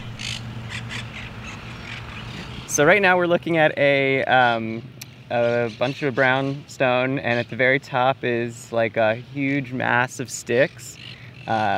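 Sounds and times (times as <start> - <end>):
flock of parrots squawking in a city park: 0.0 - 2.8, 10.9 - 11.7
steady low rumble of city traffic: 0.0 - 11.7
speech: 2.8 - 11.7.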